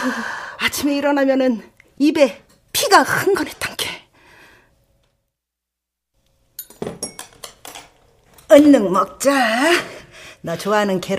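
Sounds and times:
speech: 0.0s - 3.9s, 8.5s - 11.1s
dishes and cutlery clinking at a meal table: 6.6s - 8.6s.

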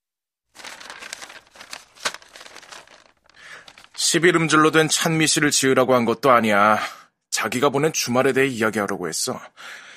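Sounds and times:
paper sheets rustling as picked up: 0.5s - 4.4s
paper sheets snapping: 0.6s - 4.0s
speech: 4.1s - 9.9s.

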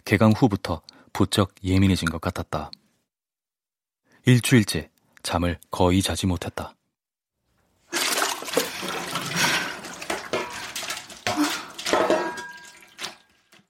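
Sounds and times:
speech: 0.1s - 2.8s, 4.2s - 6.8s
gurgles: 7.9s - 10.3s
water gushing from a kitchen tap into a sink: 7.9s - 13.6s.

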